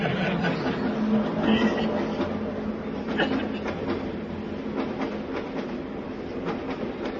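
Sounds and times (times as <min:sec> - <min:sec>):
laughter: 0:00.0 - 0:02.1
indistinct murmur of passengers talking on a train: 0:00.0 - 0:07.1
steady rumble of a packed moving train: 0:00.0 - 0:07.1.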